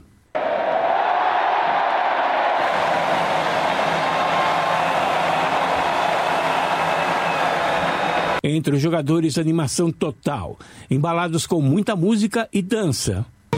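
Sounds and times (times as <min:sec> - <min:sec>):
large crowd of fans cheering outdoors at Plaza de Cibeles in Madrid: 0:00.3 - 0:08.4
speech: 0:08.5 - 0:13.4.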